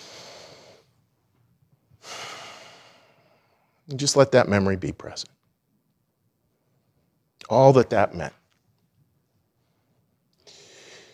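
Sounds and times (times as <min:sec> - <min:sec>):
group of people at a memorial service taking a deep breath together: 0:02.0 - 0:03.7, 0:10.4 - 0:11.1
speech: 0:03.9 - 0:05.4, 0:07.5 - 0:08.4.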